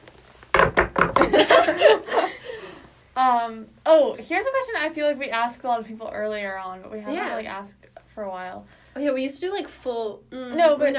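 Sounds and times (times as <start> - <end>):
knuckles knocking on wood: 0.5 - 1.4
speech: 3.2 - 10.9.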